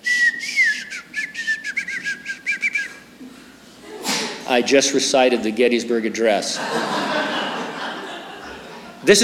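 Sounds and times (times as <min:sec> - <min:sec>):
person whistling imitating a whistled language: 0:00.0 - 0:03.1
speech: 0:04.5 - 0:07.0, 0:09.0 - 0:09.2
laughter: 0:06.4 - 0:09.2.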